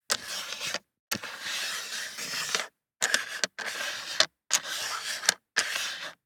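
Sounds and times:
four dice sliding on plastic: 0:00.1 - 0:06.2.

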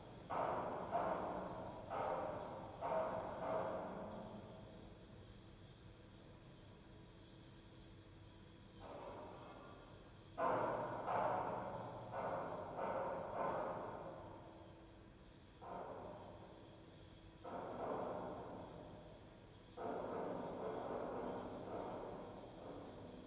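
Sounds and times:
large hall ambience: 0:00.0 - 0:23.2.

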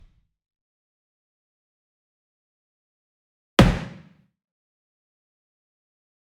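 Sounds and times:
wood mallet corner hit: 0:03.6 - 0:04.1.

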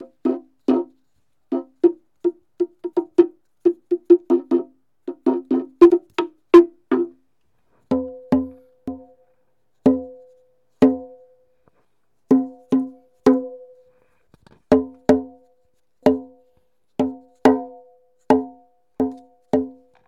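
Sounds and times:
native log drum percussion: 0:00.0 - 0:07.2, 0:07.9 - 0:09.2, 0:09.8 - 0:10.2, 0:10.8 - 0:11.2, 0:12.3 - 0:13.7, 0:14.7 - 0:16.4, 0:17.0 - 0:19.9.

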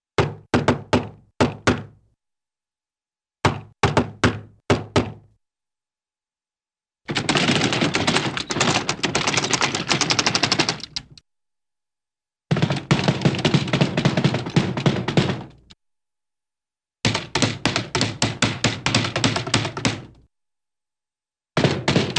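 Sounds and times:
rhythmic funny cartoon knocks on door: 0:00.2 - 0:01.9, 0:03.4 - 0:05.2, 0:07.1 - 0:11.0, 0:12.5 - 0:15.8, 0:17.0 - 0:20.2, 0:21.6 - 0:22.1.

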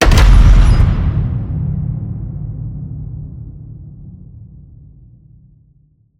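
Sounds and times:
cinematic metal crash hit: 0:00.0 - 0:02.6.

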